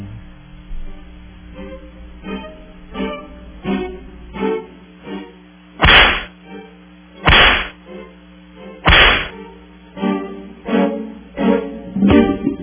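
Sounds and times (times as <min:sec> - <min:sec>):
rhythmic music of short plucked notes: 0:00.0 - 0:05.4, 0:09.4 - 0:12.6
whip cracks: 0:05.8 - 0:06.4, 0:07.2 - 0:07.8, 0:08.9 - 0:09.4.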